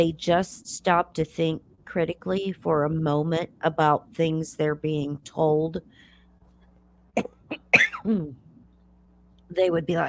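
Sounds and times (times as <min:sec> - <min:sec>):
speech: 0:00.0 - 0:06.1, 0:07.2 - 0:08.4, 0:09.5 - 0:10.0
person coughing from cat hair irritation: 0:07.2 - 0:08.4.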